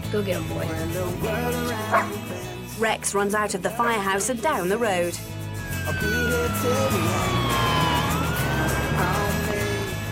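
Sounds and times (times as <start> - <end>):
speech: 0.1 - 7.6
fire truck siren wailing: 5.2 - 10.0.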